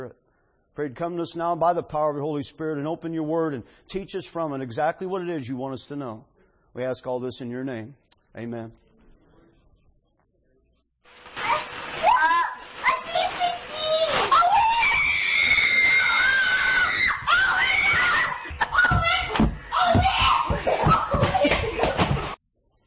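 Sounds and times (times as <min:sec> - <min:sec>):
speech: 0:00.8 - 0:08.8
excited children screaming and shrieking with joy: 0:11.6 - 0:21.6
laughter: 0:18.4 - 0:19.8, 0:20.5 - 0:22.4.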